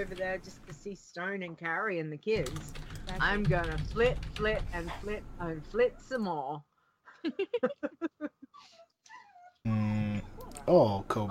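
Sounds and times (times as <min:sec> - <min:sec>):
speech: 0:00.0 - 0:08.8, 0:09.6 - 0:10.0, 0:10.6 - 0:11.2
dog whimpering: 0:08.6 - 0:09.7.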